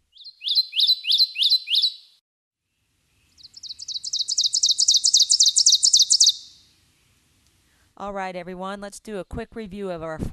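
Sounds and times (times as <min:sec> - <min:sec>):
ovenbird singing its teacher-teacher song: 0:00.0 - 0:02.2, 0:03.1 - 0:07.2
speech: 0:08.0 - 0:10.3.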